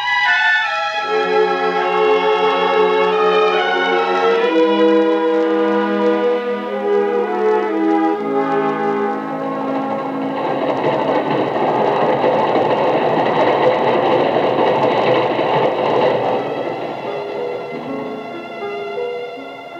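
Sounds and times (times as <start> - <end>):
train rumbling as it pulls into a station platform: 0.0 - 19.7
high metallic squeals from train brakes: 1.2 - 19.7.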